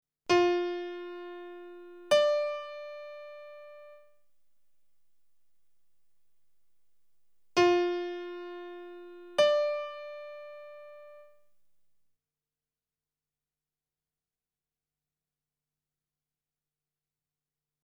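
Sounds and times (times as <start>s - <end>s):
musical interval of a sixth: 0.3s - 11.6s.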